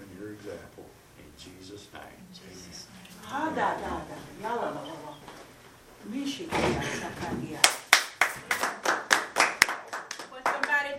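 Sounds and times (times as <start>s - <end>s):
speech: 1.4s - 5.0s, 6.0s - 7.8s
audience clapping in a steady even rhythm: 7.6s - 10.9s.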